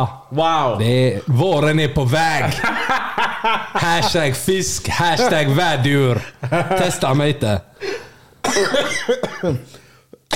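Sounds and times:
speech: 0.0 - 9.8
laughter: 2.4 - 7.2
harsh hacking coughing: 8.4 - 10.3.

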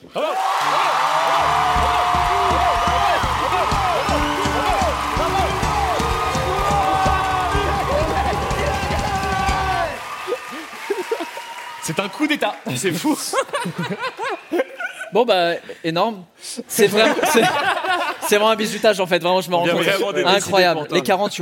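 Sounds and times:
loud crowd clapping and cheering: 0.0 - 13.1
speech: 0.1 - 0.8, 11.9 - 17.7, 18.3 - 21.4
shouts and whoops over applause: 0.2 - 11.9
laughter: 10.5 - 11.4, 13.0 - 15.1, 16.9 - 18.5.

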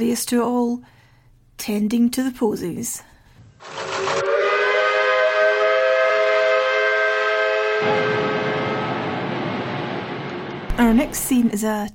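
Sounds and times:
speech: 0.0 - 1.0, 1.6 - 4.3, 10.9 - 11.9
factory steam whistle blowing: 3.7 - 9.9.

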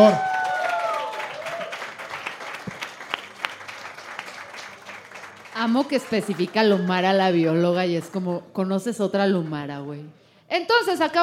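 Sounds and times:
speech: 0.0 - 0.3, 5.6 - 11.2
audience applauding: 0.0 - 7.1.

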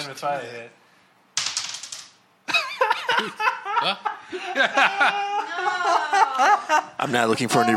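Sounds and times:
speech: 0.1 - 0.8, 3.2 - 7.7
six-sided die tumbling across a hard table: 1.4 - 2.2
people laughing: 2.5 - 7.7
excited voices: 3.8 - 7.7.

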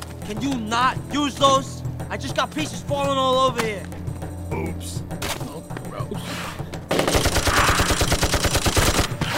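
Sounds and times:
speech: 0.3 - 5.4
rapid automatic gunfire in a video game shootout: 6.9 - 9.2.

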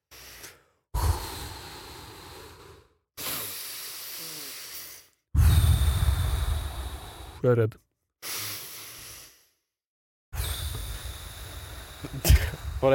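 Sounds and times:
person with eyes closed taking deep audible breaths: 0.0 - 7.4, 8.2 - 9.6, 10.4 - 12.9
speech: 7.4 - 7.8.

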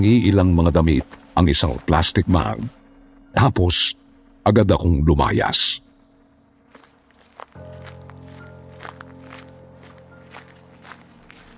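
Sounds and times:
footsteps of a person walking toward a bus terminal: 0.0 - 2.8, 6.6 - 11.5
speech: 0.0 - 2.8, 3.4 - 5.8.

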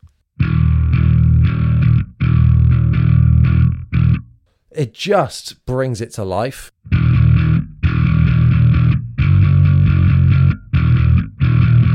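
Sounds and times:
bass guitar through distortion and compressor: 0.0 - 4.4, 6.8 - 11.9
speech: 4.8 - 6.7.

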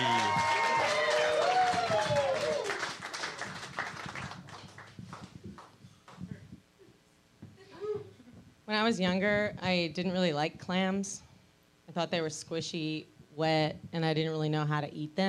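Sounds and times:
comedy show audience cheering and whooping: 0.0 - 3.5
comedy show audience clapping: 0.0 - 6.2
speech: 8.9 - 11.3, 12.0 - 15.2.

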